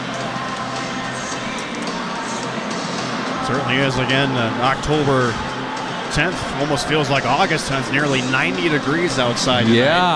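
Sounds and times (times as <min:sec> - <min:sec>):
large arena crowd cheering and chattering during a game: 0:00.0 - 0:10.1
speech: 0:03.5 - 0:05.5, 0:06.1 - 0:10.1.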